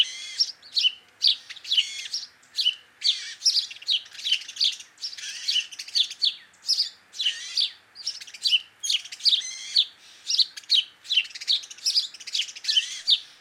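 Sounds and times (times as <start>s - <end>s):
house sparrow chattering, Passer domesticus: 0.0s - 13.3s.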